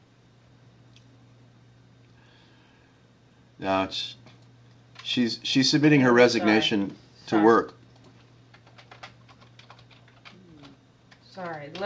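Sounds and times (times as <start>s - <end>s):
low constant hum: 0.0s - 11.8s
speech: 3.6s - 4.2s, 5.1s - 7.8s, 11.7s - 11.8s
fingers typing on a computer keyboard: 7.9s - 11.8s.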